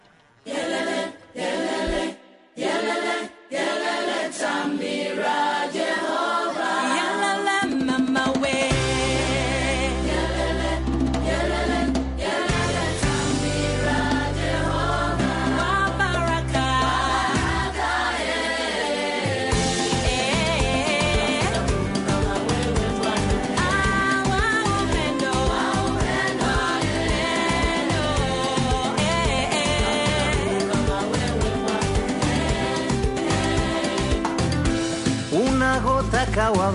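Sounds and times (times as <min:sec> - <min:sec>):
children's choir singing a song: 0:00.4 - 0:07.6, 0:08.7 - 0:34.4
steady band with deep bass: 0:08.7 - 0:17.7, 0:19.5 - 0:36.7.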